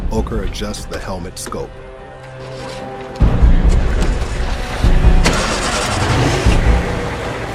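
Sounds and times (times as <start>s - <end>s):
speech: 0.1s - 2.7s
vehicle engine starting at a military camp: 3.7s - 7.5s.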